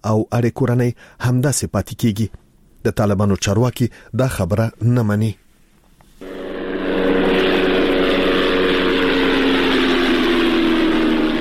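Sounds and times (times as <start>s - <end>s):
speech: 0.0s - 5.4s
unmanned drone aircraft propeller hum flying overhead: 6.2s - 11.3s.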